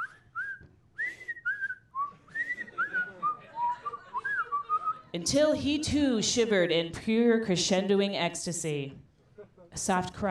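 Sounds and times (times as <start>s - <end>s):
person whistling a lilting melody: 0.0s - 5.0s
laughter: 2.3s - 5.2s, 9.3s - 9.8s
speech: 5.2s - 9.0s, 9.8s - 10.2s.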